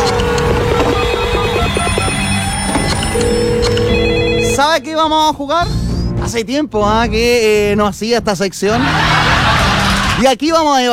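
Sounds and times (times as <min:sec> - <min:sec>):
telephone ringing with repeating electronic trill: 0:00.0 - 0:04.9
speech: 0:04.8 - 0:09.3, 0:10.2 - 0:10.9
laughter: 0:08.7 - 0:10.2.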